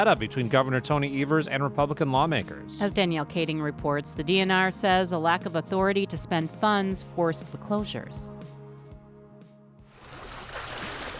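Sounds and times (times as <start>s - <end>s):
speech: 0.0s - 8.4s
water lapping along the shoreline of a Lake Superior bay: 9.9s - 11.1s.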